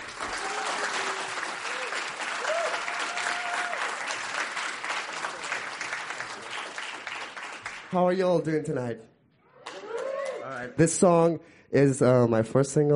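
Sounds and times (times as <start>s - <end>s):
room full of people applauding: 0.0s - 8.0s
faint cheering and whoops from an audience: 0.3s - 4.0s, 9.5s - 10.5s
speech: 7.9s - 9.1s, 10.5s - 12.9s.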